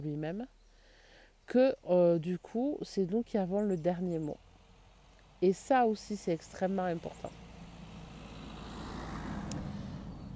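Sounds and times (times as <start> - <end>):
speech: 0.0 - 0.6, 1.5 - 4.4, 5.4 - 7.4
car passing by with low rumble and road hiss: 4.0 - 10.3.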